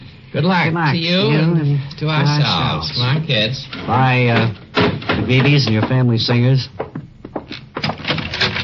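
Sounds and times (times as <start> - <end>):
speech: 0.4 - 4.7, 5.3 - 6.8
door being pulled shut: 3.8 - 6.0, 7.7 - 8.6.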